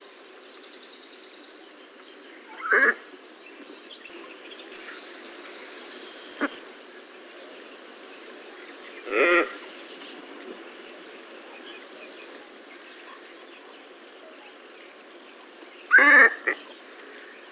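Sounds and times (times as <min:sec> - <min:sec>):
glossy ibis Plegadis falcinellus calling: 0:15.9 - 0:16.7.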